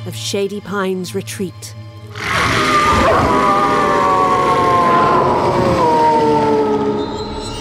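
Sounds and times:
speech: 0:00.0 - 0:03.4
group of people howling in unison: 0:02.1 - 0:07.5.

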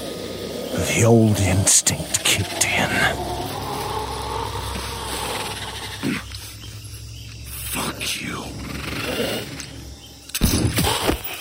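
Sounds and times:
low steady hum: 0:00.0 - 0:10.4
speech: 0:00.8 - 0:03.5
gunshot: 0:10.4 - 0:11.1.

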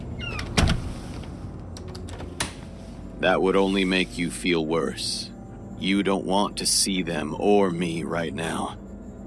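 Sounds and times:
low steady hum: 0:00.0 - 0:09.2
door rattling: 0:00.1 - 0:01.0
door thudding shut: 0:00.2 - 0:00.9
speech: 0:03.2 - 0:08.8.

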